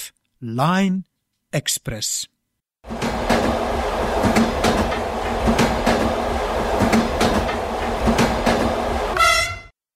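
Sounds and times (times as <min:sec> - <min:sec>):
speech: 0:00.4 - 0:03.6
train rolling along rails with wheels clicking over joints: 0:02.9 - 0:09.5
train horn: 0:09.2 - 0:09.7.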